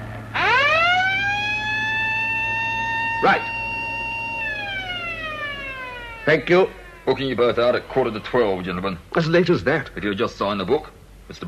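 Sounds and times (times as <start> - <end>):
building security alarm sounding with a loud electronic wail: 0.3 - 9.1
speech: 3.2 - 3.5, 6.3 - 11.4.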